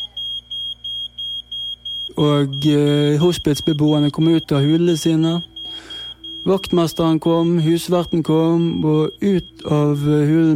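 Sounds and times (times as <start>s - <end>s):
fire alarm beeping in a lodging house: 0.0s - 10.5s
speech: 2.1s - 10.5s.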